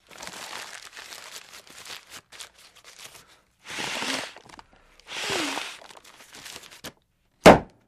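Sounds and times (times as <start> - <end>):
paper bag being blown up: 3.6 - 7.0.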